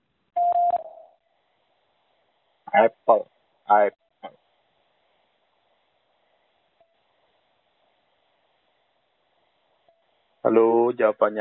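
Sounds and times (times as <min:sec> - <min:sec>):
electronic quiz answer prompt beep: 0:00.4 - 0:01.2
speech: 0:02.8 - 0:04.0, 0:10.5 - 0:11.3.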